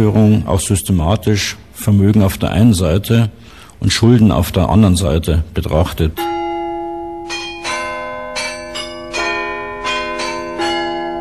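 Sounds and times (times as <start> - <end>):
speech: 0.0 - 6.3
town hall carillon bells chiming a slow melody: 6.2 - 11.1.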